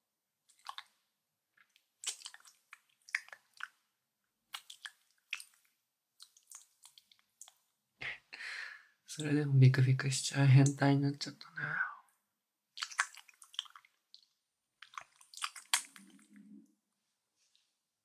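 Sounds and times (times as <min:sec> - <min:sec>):
biting and chewing: 0:02.0 - 0:03.8, 0:04.5 - 0:05.6, 0:12.8 - 0:16.4
speech: 0:09.2 - 0:11.5.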